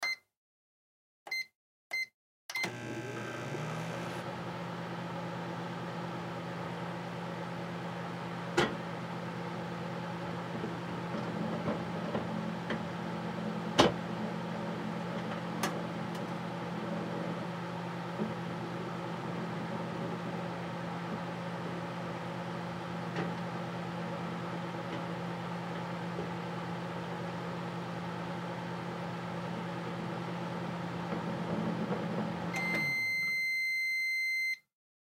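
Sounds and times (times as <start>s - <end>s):
household microwave button press beeps: 0.0s - 0.2s, 1.3s - 3.8s, 32.5s - 34.6s
household microwave running with rotating plate: 2.5s - 34.5s.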